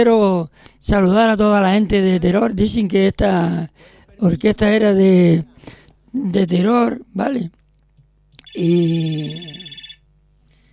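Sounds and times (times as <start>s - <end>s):
speech: 0.0s - 7.6s, 8.6s - 9.7s
telephone ringing with an incoming call: 8.4s - 10.1s.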